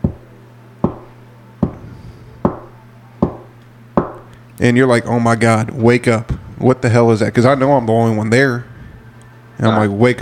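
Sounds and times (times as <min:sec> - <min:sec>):
steady low hum: 0:00.0 - 0:10.2
taps imitating footsteps walking down an apartment hallway: 0:00.8 - 0:01.8
speech: 0:04.6 - 0:08.7, 0:09.6 - 0:10.2.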